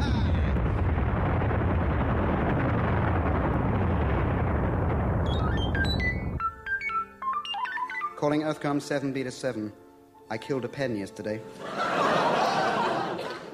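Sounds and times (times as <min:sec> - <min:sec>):
uranium cannon blast: 0:00.0 - 0:06.4
high electronic beeps: 0:05.3 - 0:08.2
speech: 0:08.2 - 0:12.0
laughter: 0:11.6 - 0:13.5.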